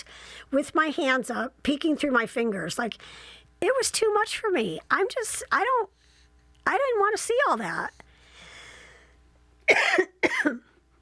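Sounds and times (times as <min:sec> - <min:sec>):
speech: 0:00.0 - 0:06.0, 0:06.6 - 0:08.0, 0:09.7 - 0:10.7
soft breathy noise: 0:02.9 - 0:03.6, 0:05.9 - 0:06.5, 0:07.8 - 0:09.3
person coughing: 0:09.7 - 0:10.8.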